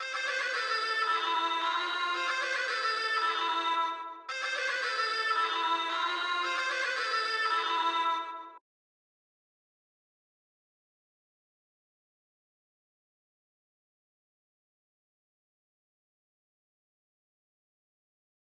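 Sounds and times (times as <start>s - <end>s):
duduk melody in A minor: 0.0s - 8.6s.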